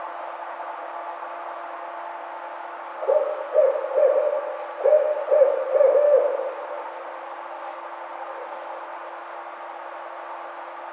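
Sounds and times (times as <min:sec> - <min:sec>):
faint steady background hum: 0:00.0 - 0:10.9
Barred owl hooting: 0:03.0 - 0:07.2.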